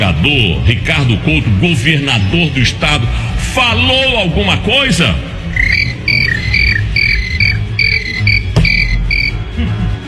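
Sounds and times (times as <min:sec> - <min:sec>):
speech: 0:00.1 - 0:05.8
crickets chirping at night: 0:05.5 - 0:09.4.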